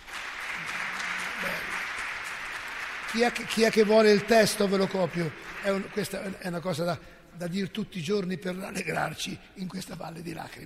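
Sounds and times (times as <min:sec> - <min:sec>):
audience applause after a spoken prayer reading: 0:00.0 - 0:06.8
speech: 0:03.1 - 0:10.6.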